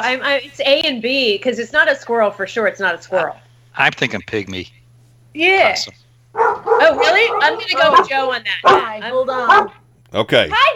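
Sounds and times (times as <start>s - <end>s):
speech: 0.0s - 6.0s, 6.8s - 10.7s
dog barking and yipping: 3.1s - 3.4s, 6.3s - 9.8s.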